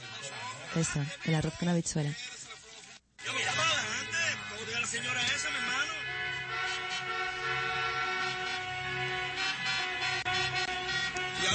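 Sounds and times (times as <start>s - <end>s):
speech: 0.7s - 2.3s
car horns honking in busy traffic: 3.2s - 11.5s.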